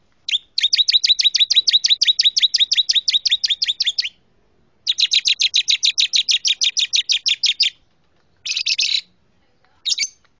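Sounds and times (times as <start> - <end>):
champion canary singing: 0.2 - 4.2, 4.8 - 7.8, 8.4 - 9.2, 9.8 - 10.3.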